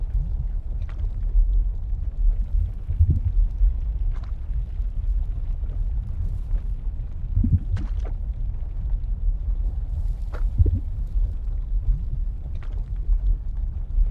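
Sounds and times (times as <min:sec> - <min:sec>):
deep rumble of molten lava and shifting ground: 0:00.0 - 0:14.1
sharp bright crackles and hisses: 0:00.0 - 0:14.1.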